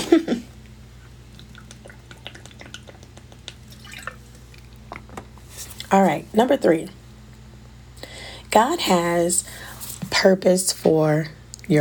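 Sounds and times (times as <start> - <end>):
soft wet mouth clicks: 1.0 - 5.1
faint swallowing: 1.0 - 5.2
person sipping water with a short slurp: 1.0 - 5.9
speech: 5.9 - 7.0, 8.5 - 11.7.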